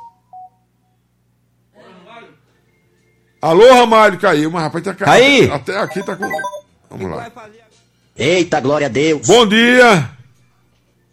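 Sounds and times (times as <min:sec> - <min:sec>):
speech: 0:03.4 - 0:07.6, 0:08.2 - 0:10.1
telephone keypad tones placing a call on a radio phone-in: 0:05.9 - 0:06.6.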